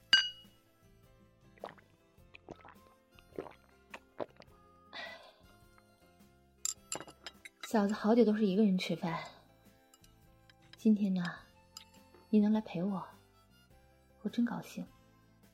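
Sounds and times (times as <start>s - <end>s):
glasses clinking in a toast: 0.1s - 0.5s, 6.6s - 8.1s, 11.7s - 12.1s
speech: 7.7s - 9.4s, 10.8s - 11.4s, 12.3s - 13.2s, 14.2s - 15.0s.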